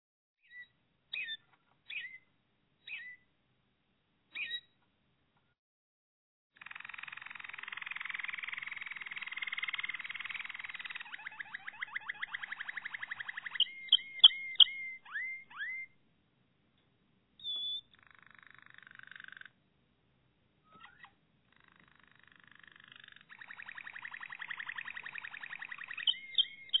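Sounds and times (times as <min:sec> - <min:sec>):
Malinois Waterslager canary singing a rolling trill: 0:00.4 - 0:03.3, 0:04.3 - 0:04.8, 0:06.6 - 0:16.0, 0:17.4 - 0:19.5, 0:20.7 - 0:26.7.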